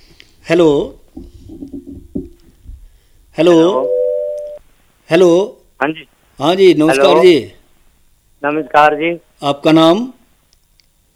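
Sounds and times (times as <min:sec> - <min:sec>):
speech: 0:00.5 - 0:01.3, 0:03.4 - 0:04.0, 0:05.1 - 0:07.6, 0:08.4 - 0:10.2
bright electronic chime-like bursts of a phone call connecting: 0:03.7 - 0:04.6
low steady phone call ringing tone: 0:03.7 - 0:04.6.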